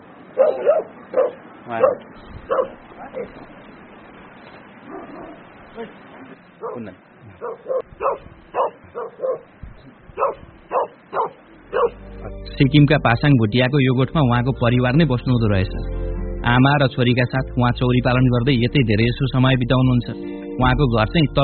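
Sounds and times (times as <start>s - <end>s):
dogs barking and yipping while chasing another dog: 0.4s - 3.4s, 4.9s - 5.5s, 6.6s - 6.8s, 7.4s - 12.0s
speech: 1.7s - 3.6s, 5.8s - 8.3s, 12.6s - 21.4s.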